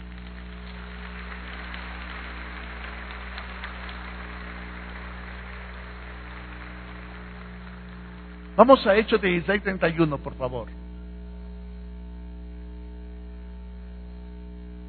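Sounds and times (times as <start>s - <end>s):
church congregation applauding: 0.0s - 10.7s
constant low electrical hum: 0.0s - 14.8s
speech: 8.6s - 10.8s.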